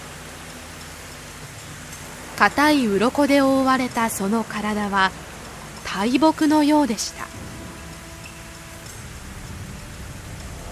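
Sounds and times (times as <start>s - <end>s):
steady dense rain pouring down: 0.0s - 10.7s
speech: 2.4s - 5.2s, 5.9s - 7.2s
blustery wind: 6.8s - 10.7s.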